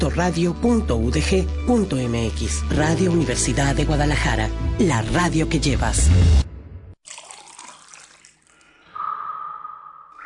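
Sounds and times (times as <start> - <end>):
speech: 0.0 - 6.4
water trickling and splashing: 7.0 - 8.9.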